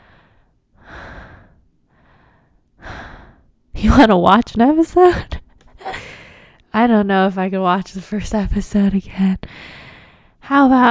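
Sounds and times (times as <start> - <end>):
heavy rough breathing of a person catching their breath: 0.0 - 3.6, 5.7 - 6.6, 9.5 - 10.4
speech: 3.8 - 5.4, 6.8 - 9.8, 10.5 - 10.8.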